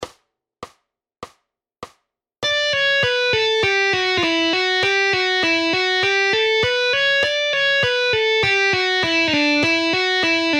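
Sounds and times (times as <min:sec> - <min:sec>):
guitar speed exercises: 0:02.4 - 0:10.5.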